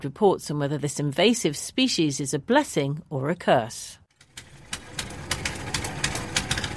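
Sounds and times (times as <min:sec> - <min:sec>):
speech: 0:00.0 - 0:04.0
fishing boat engine running on the Yatta River in Bolivia: 0:04.3 - 0:06.7.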